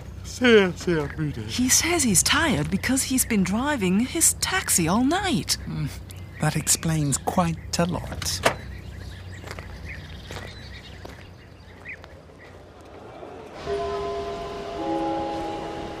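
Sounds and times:
train arriving at a railway station platform: 0.0s - 8.8s, 12.4s - 15.9s
speech: 0.4s - 8.6s.

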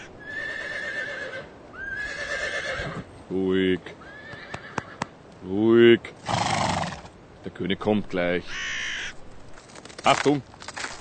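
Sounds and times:
horse neighing beside a winter sleigh: 0.0s - 3.1s, 4.0s - 5.1s, 6.2s - 7.1s
speech: 3.3s - 4.0s, 5.4s - 6.4s, 7.5s - 8.7s, 10.0s - 10.5s.

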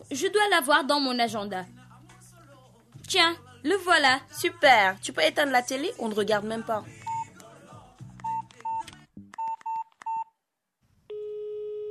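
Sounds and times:
speech: 0.0s - 1.8s, 3.1s - 7.0s
telephone number dialed on a keypad: 7.1s - 7.3s, 8.2s - 10.3s
steady continuous telephone tone: 11.1s - 11.8s.

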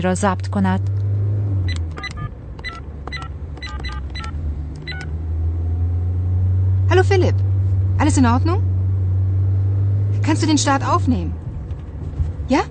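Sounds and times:
speech: 0.0s - 0.9s, 7.0s - 7.4s, 8.0s - 8.7s, 10.3s - 11.4s, 12.5s - 12.6s
steady low engine rumble inside a car: 0.0s - 12.6s
touch-tone beeps of a phone number being dialed: 1.7s - 5.1s.

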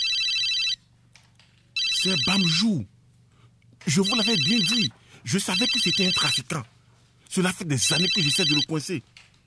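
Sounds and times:
mobile phone ringtone with bright trilling electronic tone: 0.0s - 0.8s, 1.8s - 2.7s, 4.0s - 4.9s, 5.5s - 6.4s, 7.9s - 8.7s
speech: 2.0s - 3.0s, 3.8s - 6.7s, 7.3s - 9.3s.

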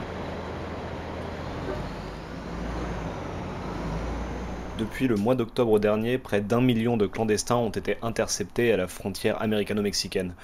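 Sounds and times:
bus engine rumble: 0.0s - 5.7s
road traffic: 0.0s - 5.7s
speech: 4.8s - 10.4s.

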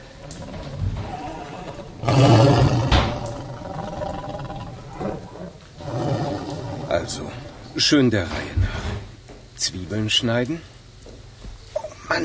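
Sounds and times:
stomach growling from hunger: 0.0s - 7.8s, 11.7s - 12.1s
speech: 7.1s - 8.6s, 9.6s - 10.7s.

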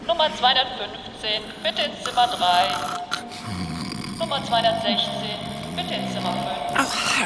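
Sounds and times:
speech: 0.2s - 3.6s, 4.2s - 7.2s
person snoring with rough rattling rasps: 1.6s - 7.2s.

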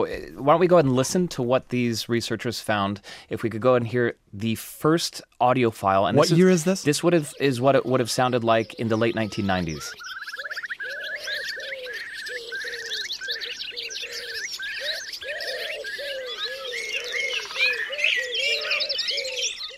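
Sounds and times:
speech: 0.0s - 10.1s
repeated wild bird call notes: 6.0s - 19.7s.

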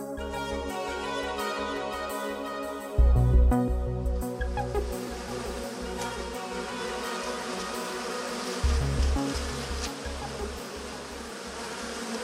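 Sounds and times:
bee buzzing: 0.2s - 12.2s.

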